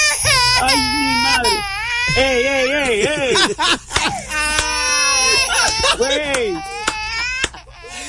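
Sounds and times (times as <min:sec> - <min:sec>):
young child wailing and screaming: 0:00.0 - 0:02.9, 0:04.3 - 0:07.6
speech: 0:00.6 - 0:01.1, 0:02.1 - 0:04.5
laughter: 0:02.6 - 0:04.4, 0:05.2 - 0:08.0.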